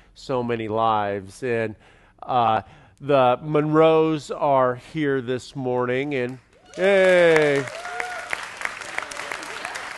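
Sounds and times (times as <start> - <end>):
speech: 0.2 - 7.9
audience applauding: 6.6 - 9.9.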